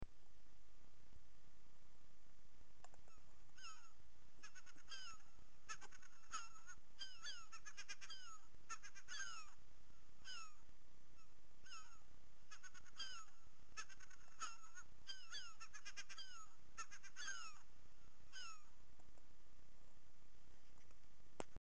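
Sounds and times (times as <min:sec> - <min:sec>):
herring gull calling: 0:03.1 - 0:09.6, 0:10.2 - 0:10.6, 0:11.2 - 0:17.7, 0:18.3 - 0:18.7.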